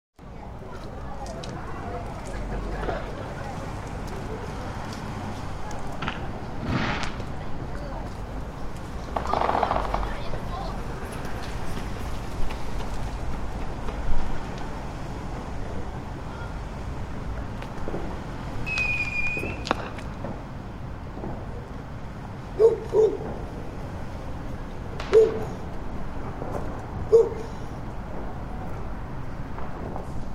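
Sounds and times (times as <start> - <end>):
people walking in English street: 0.2 - 30.3
distant fireworks in English street on November the 5th: 0.4 - 30.3
dogs barking: 22.6 - 23.2, 27.1 - 27.5.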